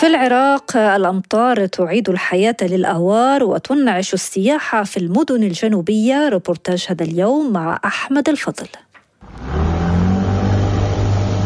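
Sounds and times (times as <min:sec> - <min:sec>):
speech: 0:00.0 - 0:09.6
engine of a wooden boat in the Iraqi marshes droning: 0:09.2 - 0:11.4.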